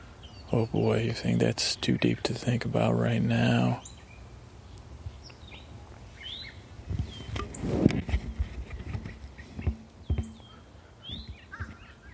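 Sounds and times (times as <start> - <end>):
birds chirping and calling: 0.0 - 12.1
steady outdoor ambience: 0.0 - 12.1
speech: 0.5 - 4.0
thuds and clopping: 7.8 - 11.8.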